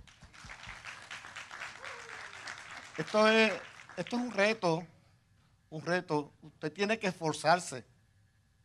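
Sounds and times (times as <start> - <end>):
audience applauding: 0.0 - 4.8
speech: 3.0 - 4.9, 5.7 - 7.9.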